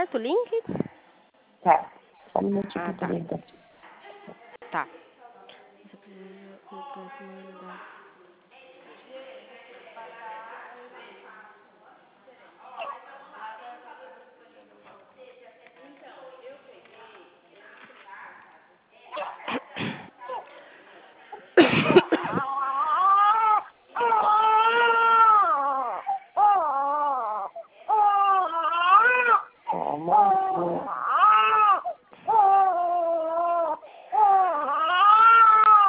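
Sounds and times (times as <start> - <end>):
speech: 0.0 - 0.8, 1.6 - 3.6, 4.3 - 5.0
small baby crying: 22.2 - 35.8.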